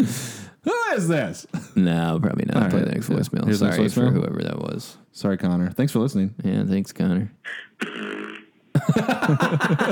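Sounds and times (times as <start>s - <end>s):
speech: 1.0s - 8.2s, 8.8s - 9.8s
fart left on a voicemail: 7.8s - 8.6s
laughter: 8.8s - 9.8s.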